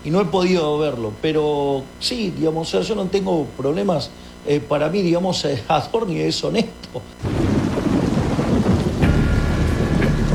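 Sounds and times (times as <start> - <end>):
speech: 0.0 - 7.4
deep rumble of thunder: 7.2 - 10.3
heavy rain pouring down in a dense loud hiss: 7.2 - 10.3.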